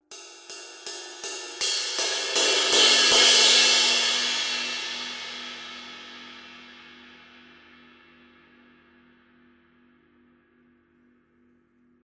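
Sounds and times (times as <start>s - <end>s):
sweet ride cymbal crescendo hits: 0.1s - 6.6s.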